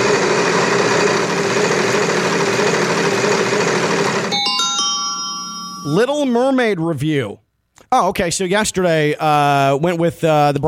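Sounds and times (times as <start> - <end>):
game-show style wheel of topics spinning: 0.0 - 6.1
bright chiming tones: 4.3 - 6.5
speech: 6.0 - 10.6.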